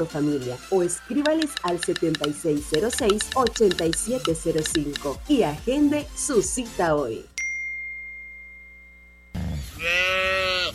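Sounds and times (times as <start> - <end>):
speech: 0.0 - 7.3
bell-like tone: 7.4 - 9.4
cow mooing: 9.6 - 10.7.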